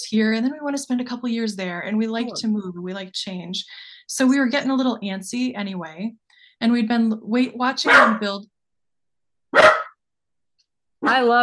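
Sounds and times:
speech: 0.0s - 8.5s, 11.0s - 11.4s
dog barking: 7.8s - 8.2s, 9.5s - 10.0s.

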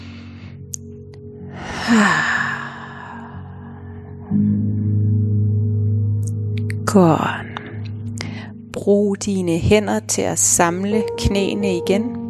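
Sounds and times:
deep full breath in and out: 0.0s - 0.7s, 1.3s - 4.3s, 7.5s - 8.7s
low steady drone humming: 0.0s - 12.2s
speech: 1.9s - 2.4s, 6.9s - 7.4s, 8.8s - 12.2s.

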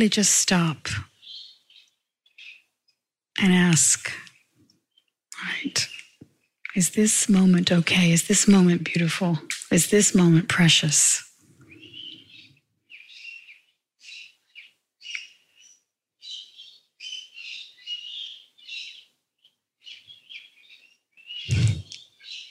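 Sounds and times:
speech: 0.0s - 1.1s, 3.4s - 4.3s, 5.4s - 6.0s, 6.8s - 11.3s
birds chirping and trilling on a breezy summer afternoon: 0.0s - 22.4s
sharp thump: 21.5s - 21.8s.

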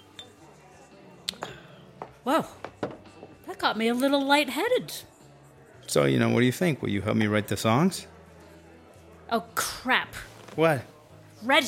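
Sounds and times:
glasses clinking in a toast: 0.0s - 0.4s
speech: 2.2s - 2.7s, 3.6s - 5.1s, 5.9s - 8.1s, 9.3s - 11.6s.

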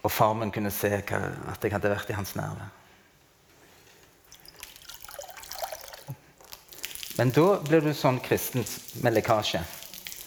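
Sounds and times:
speech: 0.0s - 2.8s, 7.2s - 9.8s
water pouring from a container: 4.2s - 10.2s.

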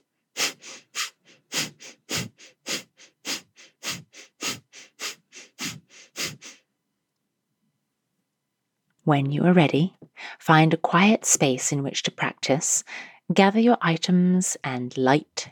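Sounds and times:
rapid sharp exhales through the nose in Breath of Fire yoga breathing: 0.0s - 6.6s
speech: 9.1s - 15.4s.

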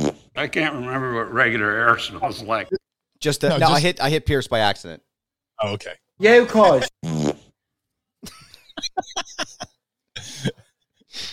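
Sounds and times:
cartoonish fart sound effect played from a soundboard: 0.0s - 0.4s, 6.9s - 7.5s
speech: 0.4s - 7.2s
laughter: 8.2s - 10.5s.

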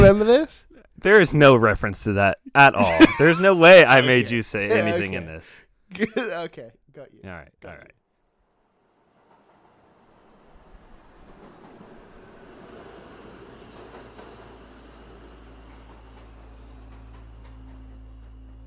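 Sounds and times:
speech: 0.0s - 8.0s
laughter: 2.7s - 6.4s
train rumbling and clattering as it pulls into a station: 9.2s - 18.6s.

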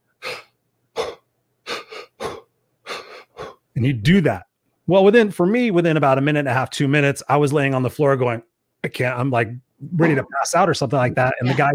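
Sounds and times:
forceful rhythmic breathing exercise breaths: 0.0s - 3.7s
speech: 3.8s - 11.7s.

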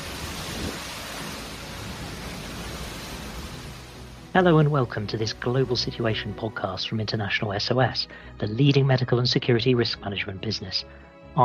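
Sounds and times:
cyclone storm wind in Vanuatu: 0.0s - 4.0s
heavy rain from a cyclone in Vanuatu: 0.0s - 5.0s
speech: 4.4s - 11.4s.

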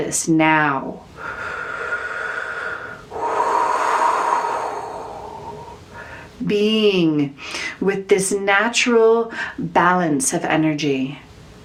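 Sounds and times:
speech: 0.0s - 1.5s, 6.4s - 11.3s
long airy inhale: 1.1s - 6.4s
fuller exhale with a soft hissing rush of air: 1.2s - 6.4s.

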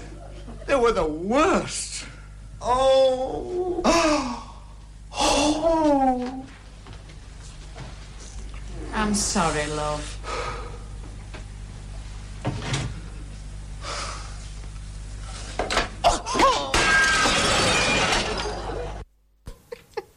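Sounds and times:
speech: 0.7s - 4.4s, 5.2s - 6.6s, 9.0s - 10.2s
objects and a clock being smashed: 16.3s - 19.0s.

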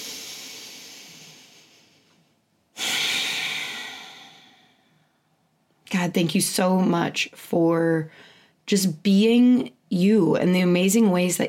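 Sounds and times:
loud hissing exhale during a spoken prayer: 0.0s - 2.1s, 2.8s - 4.9s
soft breathy inhale during a spoken prayer: 0.0s - 5.4s
speech: 6.0s - 11.4s.

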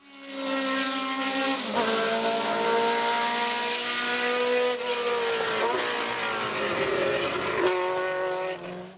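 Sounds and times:
Ford Cosworth DFV racing engine revving: 0.1s - 8.9s.

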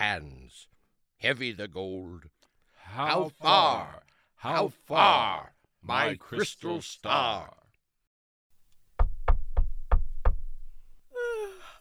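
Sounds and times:
speech: 0.0s - 7.6s
firm knocks on a door: 8.9s - 11.0s.

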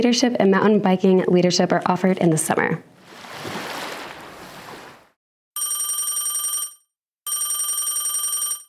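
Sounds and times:
speech: 0.0s - 2.9s
telephone ringing with a loud trilling ring: 5.6s - 8.6s.

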